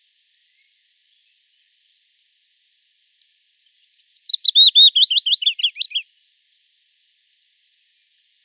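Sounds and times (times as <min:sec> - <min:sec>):
willow warbler singing a descending whistled phrase: 0:03.2 - 0:06.0.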